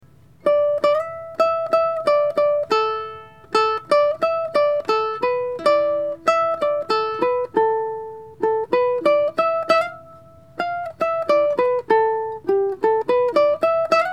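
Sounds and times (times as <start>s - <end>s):
short sweet ukulele playing: 0.0s - 14.1s.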